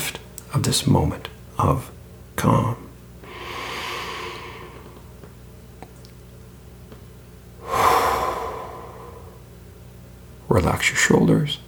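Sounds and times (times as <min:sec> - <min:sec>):
speech: 0:00.6 - 0:02.8, 0:10.5 - 0:11.6
slow breathing in and out during a guided relaxation exercise: 0:03.2 - 0:05.3, 0:07.6 - 0:09.6.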